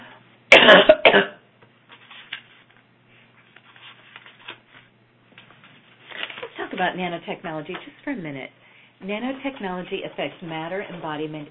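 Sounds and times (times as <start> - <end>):
person coughing from a tickle in the throat: 0.5 - 1.4
speech: 6.8 - 11.5.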